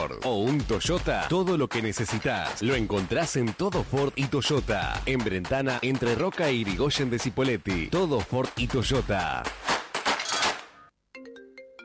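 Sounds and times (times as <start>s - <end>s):
speech: 0.1s - 9.7s
telephone ringing with a short bright electronic ringtone melody: 10.3s - 11.8s.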